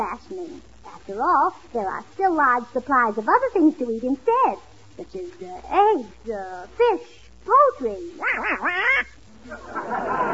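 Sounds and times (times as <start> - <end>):
speech: 0.0 - 10.3
duck quacking: 8.2 - 9.2
laughter: 8.3 - 10.3.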